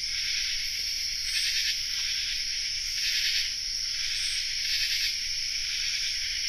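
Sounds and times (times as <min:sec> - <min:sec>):
common true katydid chorus in North America: 0:00.0 - 0:06.4.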